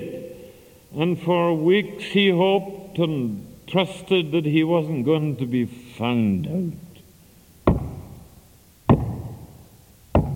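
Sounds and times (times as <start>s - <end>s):
speech: 1.0s - 6.8s
heavy knocks on a wooden door by a policeman: 7.7s - 8.0s, 8.9s - 9.3s.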